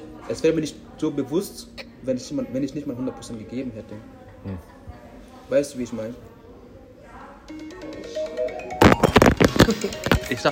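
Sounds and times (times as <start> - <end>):
speech: 0.3 - 4.8, 5.5 - 6.3, 9.7 - 10.4
mobile phone ringtone: 7.5 - 10.4.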